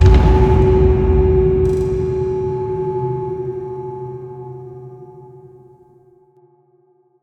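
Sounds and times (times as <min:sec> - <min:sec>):
cello stinger: 0:00.0 - 0:05.6.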